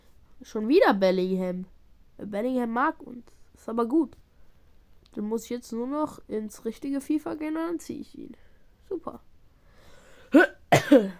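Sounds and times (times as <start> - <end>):
speech: 0.4 - 4.2, 5.2 - 9.3, 10.3 - 11.1
person coughing: 10.2 - 11.1.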